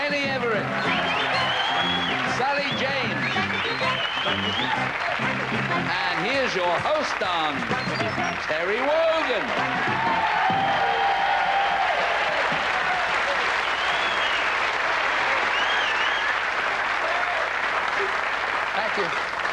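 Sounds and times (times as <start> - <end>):
large TV game show studio audience applause: 0.0 - 19.5
audience whoops and cheers: 0.8 - 2.3, 9.4 - 17.6
speech: 4.2 - 11.0, 19.0 - 19.3.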